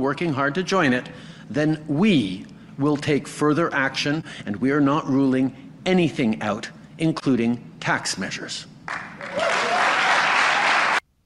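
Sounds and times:
speech: 0.0 - 9.0
crowd applauding: 8.9 - 11.0.

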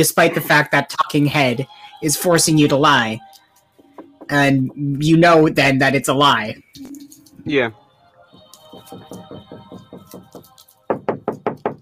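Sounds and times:
speech: 0.0 - 3.4, 4.3 - 7.8
knocking on a door: 8.8 - 11.8.

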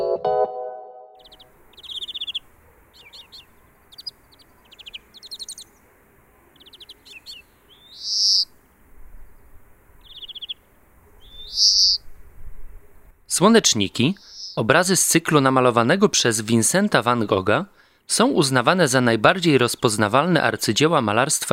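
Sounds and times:
bird calling outdoors with sharp chirps and trilled phrases: 1.2 - 12.1, 14.1 - 14.6
soft steady hiss: 1.2 - 15.5
speech: 13.4 - 21.5.

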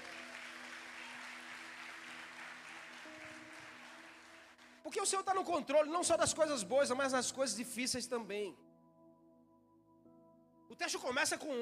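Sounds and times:
audience applauding: 0.0 - 4.9
speech: 4.9 - 8.6, 10.8 - 11.6.

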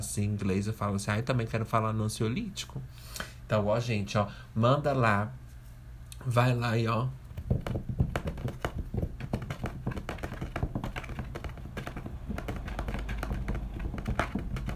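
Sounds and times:
speech: 0.0 - 5.4, 6.2 - 7.9
rapid typing on a computer keyboard: 9.2 - 14.7.

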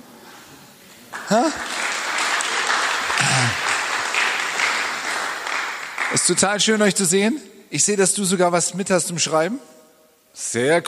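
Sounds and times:
audience applause from a sizable crowd: 1.1 - 6.4
speech: 1.3 - 1.7, 6.1 - 10.8.

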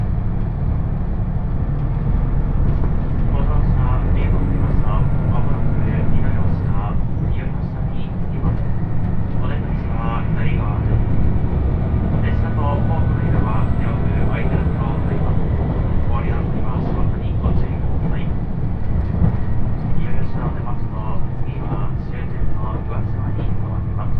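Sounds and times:
heavy low rumble inside a limited express train carriage: 0.0 - 24.1
people talking on a limited express train: 3.2 - 8.6, 9.3 - 11.1, 12.1 - 18.4, 19.9 - 24.1.

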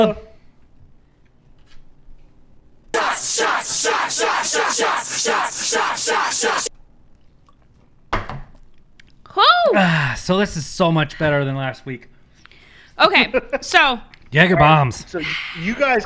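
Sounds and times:
speech: 0.0 - 0.2, 3.8 - 6.8, 9.4 - 12.1, 13.0 - 16.0
group of people cheering: 3.0 - 6.7
group of people yelling a toast in unison: 3.0 - 6.7.

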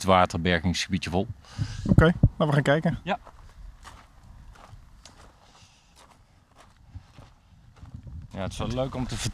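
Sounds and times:
speech: 0.0 - 3.3, 8.4 - 9.3
low rumble of wind: 0.1 - 9.3
footsteps crunching along an outdoor path through a water storage area: 3.1 - 9.3.

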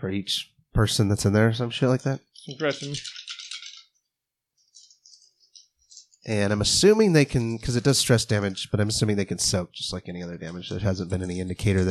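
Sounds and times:
speech: 0.0 - 3.2, 6.3 - 11.8
six dice rolled during a tabletop game: 2.3 - 4.0, 4.6 - 9.0.

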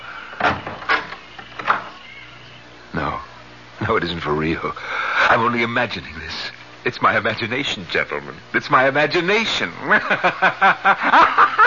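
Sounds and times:
closet door opening with wooden knocks and rattles: 0.3 - 2.0
speech: 3.9 - 11.6
laughter: 9.8 - 11.6.

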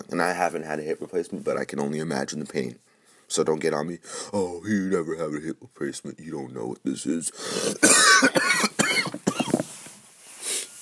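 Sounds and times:
speech: 0.1 - 8.7
person breathing: 2.8 - 3.3, 4.0 - 4.4, 7.3 - 7.8, 10.2 - 10.8
harsh raspy coughing: 7.4 - 9.7.

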